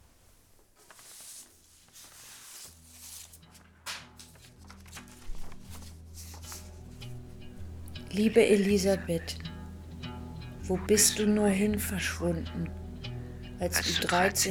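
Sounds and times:
paper letters on a floor rustling and crinkling: 0:00.0 - 0:07.2
low steady musical drone: 0:05.8 - 0:14.4
speech: 0:08.1 - 0:09.4, 0:10.7 - 0:12.8, 0:13.6 - 0:14.4.

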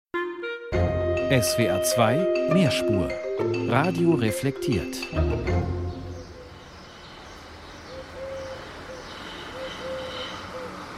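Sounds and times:
speech: 0:01.3 - 0:05.9
soft whistled bird calls in a quiet city: 0:07.9 - 0:10.8.

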